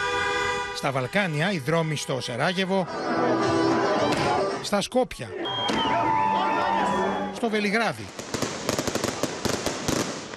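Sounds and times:
speech: 0:00.8 - 0:06.1, 0:07.4 - 0:08.2
crowd noise outdoors at street celebration: 0:02.9 - 0:04.6, 0:05.3 - 0:07.4
firework and firecracker bangs at street celebration: 0:08.1 - 0:10.3.

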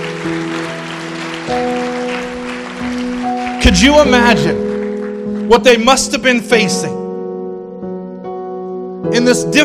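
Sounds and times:
crowd applauding: 0:00.0 - 0:06.8
sustained organ-like keyboard chords: 0:00.0 - 0:09.6
speech: 0:00.2 - 0:00.6, 0:03.7 - 0:04.6, 0:05.5 - 0:07.0, 0:09.1 - 0:09.6.

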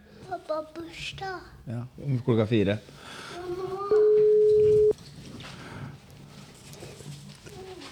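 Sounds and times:
speech: 0:00.3 - 0:04.0
telephone ringback tone on outgoing call: 0:03.9 - 0:05.0.

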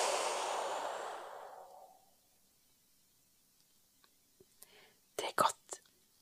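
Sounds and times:
brief whispery sounds: 0:00.0 - 0:02.0
long slow breathy exhale during a guided breathing exercise: 0:00.0 - 0:02.0.

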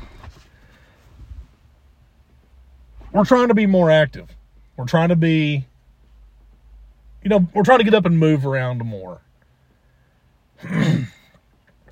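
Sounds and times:
speech: 0:03.2 - 0:05.7, 0:07.2 - 0:09.3, 0:10.6 - 0:11.2
throat clearing: 0:10.6 - 0:11.4.

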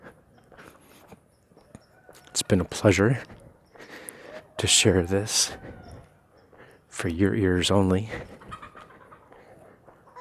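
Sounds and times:
speech: 0:02.4 - 0:03.4, 0:04.6 - 0:05.8, 0:07.0 - 0:08.4
rooster crowing: 0:04.2 - 0:06.3.

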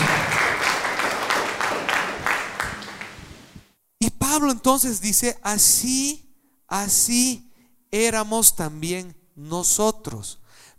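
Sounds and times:
audience applause: 0:00.0 - 0:03.6
speech: 0:04.4 - 0:10.4.

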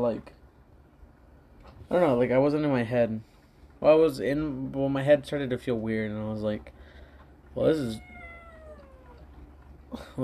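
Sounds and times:
speech: 0:00.0 - 0:00.4, 0:01.9 - 0:06.8, 0:07.6 - 0:08.1, 0:09.9 - 0:10.2
pet cat meowing: 0:07.8 - 0:09.3.

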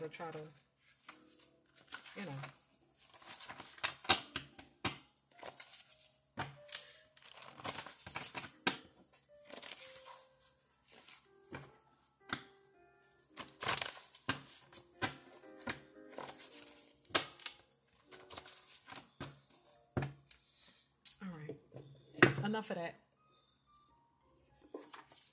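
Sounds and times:
speech: 0:00.1 - 0:00.7, 0:02.2 - 0:02.6, 0:22.6 - 0:23.0
large stack of paper index cards being shuffled: 0:00.4 - 0:04.7, 0:05.3 - 0:11.7, 0:13.3 - 0:20.8, 0:24.7 - 0:25.3.

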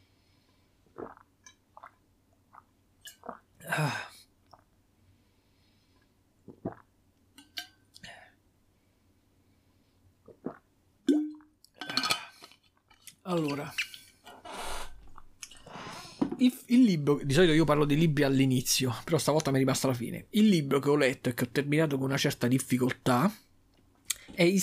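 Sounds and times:
breaths: 0:00.0 - 0:00.9, 0:05.0 - 0:06.2, 0:08.0 - 0:10.1, 0:15.6 - 0:16.4, 0:24.1 - 0:24.4
person sipping water: 0:00.9 - 0:03.5, 0:06.5 - 0:06.9, 0:10.2 - 0:10.6, 0:12.1 - 0:16.0
speech: 0:13.3 - 0:13.9, 0:16.4 - 0:23.4, 0:24.4 - 0:24.6
soft mouth clicks: 0:24.1 - 0:24.3.

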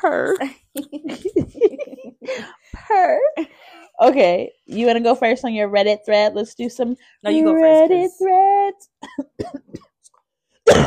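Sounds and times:
speech: 0:00.0 - 0:01.2, 0:04.0 - 0:09.8, 0:10.7 - 0:10.8
person coughing: 0:09.0 - 0:10.0, 0:10.6 - 0:10.8.

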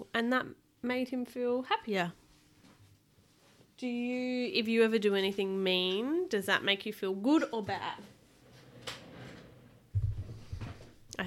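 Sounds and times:
speech: 0:00.1 - 0:02.2, 0:03.8 - 0:08.2
chair pushed back scraping across the floor: 0:07.7 - 0:11.0
quiet knock: 0:10.0 - 0:10.8.

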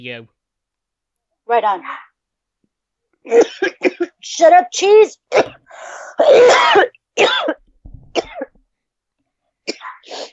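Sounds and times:
speech: 0:00.0 - 0:00.4, 0:01.5 - 0:02.0, 0:03.2 - 0:07.6
harsh raspy coughing: 0:03.3 - 0:04.2, 0:06.2 - 0:08.6.

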